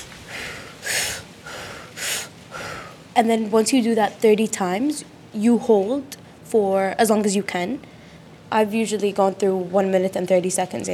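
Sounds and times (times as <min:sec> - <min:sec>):
deep rhythmic breathing in the Wim Hof method: 0:00.0 - 0:03.0
speech: 0:03.2 - 0:07.9, 0:08.5 - 0:10.9.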